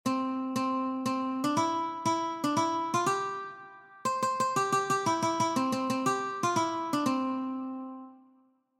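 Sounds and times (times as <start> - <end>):
ukulele melody: 0.0 - 8.2.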